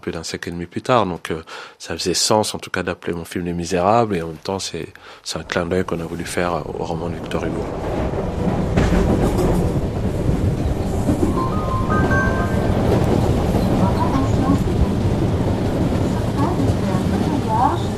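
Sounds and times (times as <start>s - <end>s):
speech: 0.0s - 8.6s
RER commuter train rumbling along the rails: 5.4s - 17.9s.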